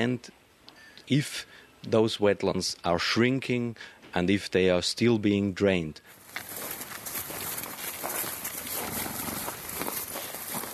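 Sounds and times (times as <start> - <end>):
speech: 0.0 - 0.4, 1.1 - 6.6
Tarpan-descended horses walking through soft wet ground in wetlands in Austria: 6.1 - 10.7.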